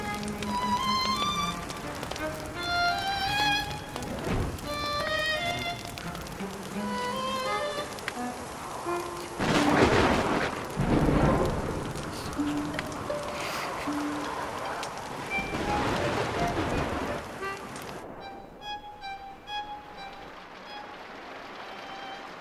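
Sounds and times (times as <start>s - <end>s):
soft tonal melody: 0.0s - 9.8s, 12.4s - 22.3s
steady rainfall: 0.0s - 22.3s
thunder booms as lightning strikes a nearby tree: 4.0s - 4.9s, 9.4s - 14.6s, 15.2s - 21.4s.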